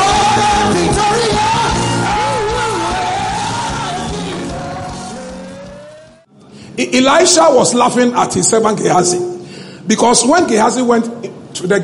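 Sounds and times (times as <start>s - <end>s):
audience shouting and yelling with whoops: 0.0s - 6.2s
speech: 6.8s - 9.3s, 9.9s - 11.8s.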